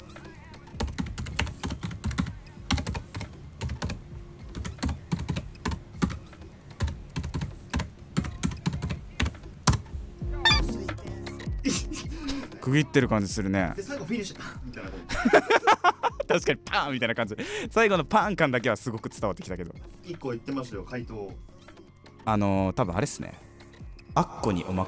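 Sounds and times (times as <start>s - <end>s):
typing on a computer keyboard: 0.7s - 9.8s
laughter: 11.6s - 12.6s, 15.0s - 16.6s
speech: 12.7s - 21.5s, 22.3s - 23.5s, 24.2s - 24.8s.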